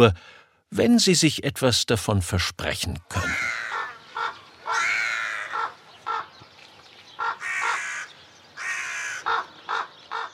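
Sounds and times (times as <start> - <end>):
speech: 0.0 - 3.6
crows cawing: 3.2 - 6.4, 7.1 - 10.3.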